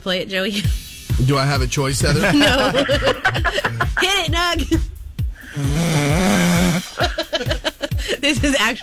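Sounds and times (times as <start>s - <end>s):
speech: 0.0s - 4.9s, 5.6s - 8.8s
laughter: 1.9s - 4.7s, 6.2s - 8.8s
loud rasping snore with snorting breaths: 5.4s - 7.1s.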